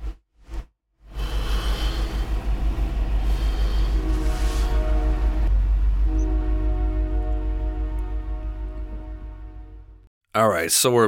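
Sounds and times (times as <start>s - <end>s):
train passing: 1.1s - 10.0s
steady horn-like tones: 2.7s - 10.1s
speech: 10.4s - 11.0s.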